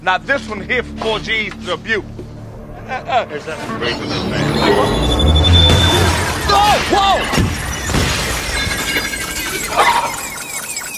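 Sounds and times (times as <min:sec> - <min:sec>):
speech: 0:00.0 - 0:02.2, 0:02.9 - 0:05.8, 0:06.5 - 0:07.6
mirrors smashed with glass shattering: 0:05.6 - 0:10.9
bright tinkling glass shards: 0:07.7 - 0:10.9.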